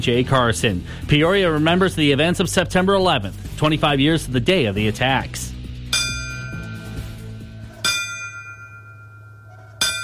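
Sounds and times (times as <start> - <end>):
speech: 0.0 - 5.5
ceremonial bells ringing at a remembrance ceremony at a museum in Peoria: 5.9 - 7.2, 7.8 - 10.0
overlapping chimes: 5.9 - 10.0.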